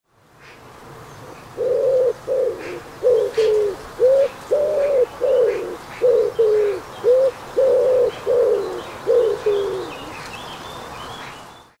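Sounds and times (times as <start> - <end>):
woodpigeon: 1.6 - 10.3.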